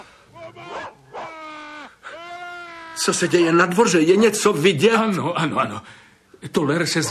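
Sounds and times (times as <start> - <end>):
dog barking and whimpering: 0.0 - 1.9
dog letting out drawn-out high whining yelps: 0.0 - 3.0
speech: 3.0 - 7.0.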